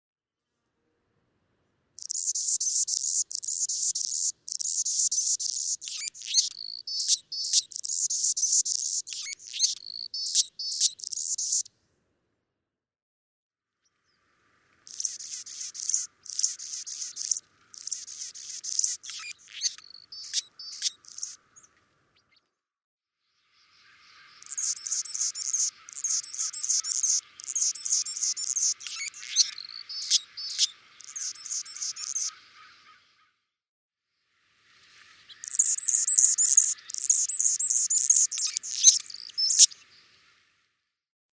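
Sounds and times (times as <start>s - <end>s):
Anna's hummingbird: 2.0s - 11.7s, 14.9s - 21.7s, 24.4s - 32.4s, 35.3s - 39.8s.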